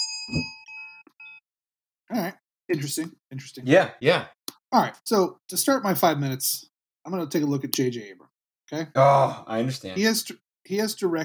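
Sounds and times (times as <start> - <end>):
bell ringing: 0.0 - 1.4
speech: 0.3 - 0.6, 2.1 - 11.2.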